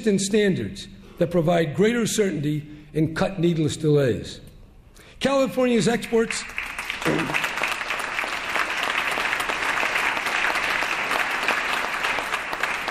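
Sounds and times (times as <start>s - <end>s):
speech: 0.0s - 4.5s, 5.2s - 7.4s
large audience applauding during a speech on California: 6.4s - 12.9s.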